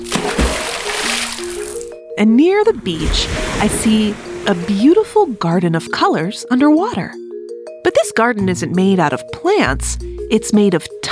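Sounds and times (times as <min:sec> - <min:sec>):
water splashing from someone swimming: 0:00.0 - 0:02.0, 0:02.6 - 0:05.5
speech: 0:02.2 - 0:07.2, 0:07.8 - 0:10.9.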